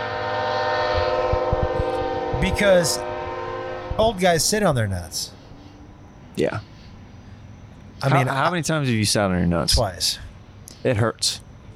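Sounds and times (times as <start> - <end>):
train horn blaring: 0.0 - 5.9
train rolling by: 0.0 - 11.7
speech: 2.4 - 3.1, 4.0 - 5.4, 6.4 - 6.7, 8.0 - 11.5.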